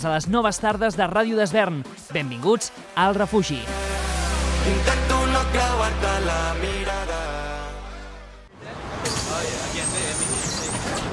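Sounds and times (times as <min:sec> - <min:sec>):
speech: 0:00.0 - 0:04.0, 0:04.6 - 0:07.1
bus engine droning: 0:03.7 - 0:11.1.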